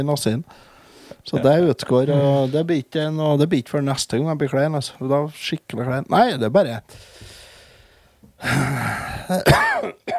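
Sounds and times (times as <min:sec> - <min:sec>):
speech: 0:00.0 - 0:07.3, 0:08.4 - 0:10.1
person coughing: 0:08.4 - 0:10.1.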